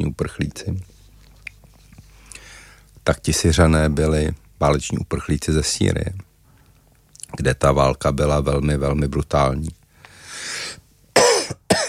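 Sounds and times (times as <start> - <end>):
speech: 0.0 - 0.9, 3.1 - 6.3, 7.3 - 9.8
sharp inhale: 2.0 - 2.9, 10.0 - 10.8
harsh coughs: 11.2 - 11.8.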